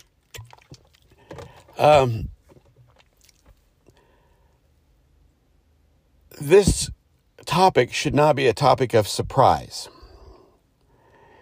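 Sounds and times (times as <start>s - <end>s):
person drinking water: 0.0s - 4.1s
speech: 1.8s - 2.3s, 6.4s - 10.0s.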